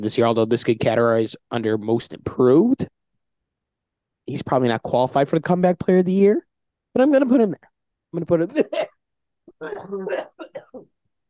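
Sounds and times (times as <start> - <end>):
speech: 0.0 - 2.9, 4.3 - 8.9, 9.6 - 11.0
person in a raspy coughing fit: 8.6 - 10.9.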